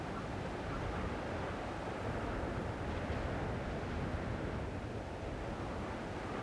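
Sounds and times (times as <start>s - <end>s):
high wind: 0.0s - 6.4s.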